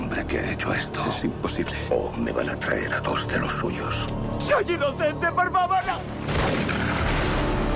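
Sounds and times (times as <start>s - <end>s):
speech: 0.2s - 7.1s
gunshots in a western film excerpt: 5.8s - 7.6s.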